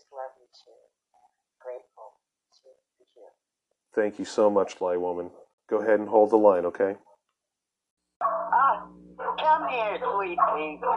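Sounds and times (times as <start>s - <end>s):
speech: 0.4s - 7.1s, 9.7s - 10.9s
dogs barking while being rounded up: 8.2s - 10.9s.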